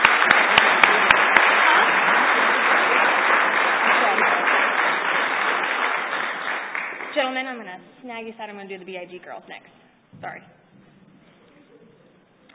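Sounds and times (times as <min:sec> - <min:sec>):
crowd applauding: 0:00.0 - 0:07.2
speech: 0:08.2 - 0:10.6.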